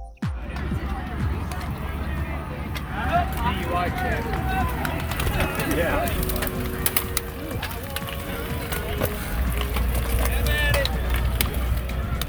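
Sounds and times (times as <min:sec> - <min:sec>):
metallic clicks of cyclists clipping into bike pedals: 0:00.3 - 0:12.2
steady murmur of many voices: 0:00.3 - 0:12.2
laughter: 0:00.4 - 0:12.2
speech: 0:03.8 - 0:06.4.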